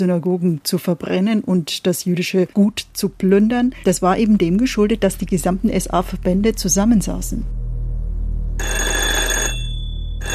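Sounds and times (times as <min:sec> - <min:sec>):
speech: 0:00.0 - 0:07.6
low steady hum: 0:00.0 - 0:10.3
old telephone bell ringing: 0:08.6 - 0:10.3.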